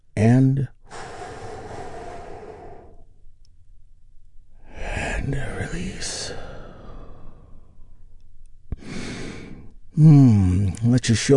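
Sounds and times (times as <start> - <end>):
speech: 0.2 - 0.8, 5.3 - 6.5, 10.0 - 11.3
person taking a big deep breath: 0.9 - 3.2, 6.3 - 7.8, 8.8 - 9.7.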